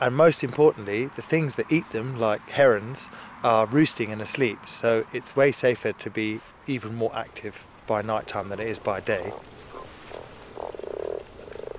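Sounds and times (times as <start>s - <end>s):
speech: 0.0s - 9.6s
many toads croaking at a pond at night: 8.2s - 11.7s.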